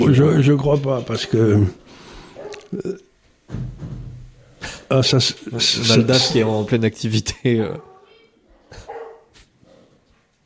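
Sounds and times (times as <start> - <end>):
speech: 0.1 - 2.0, 2.7 - 3.7, 4.9 - 7.9
dog barking: 2.4 - 2.7, 7.8 - 9.9.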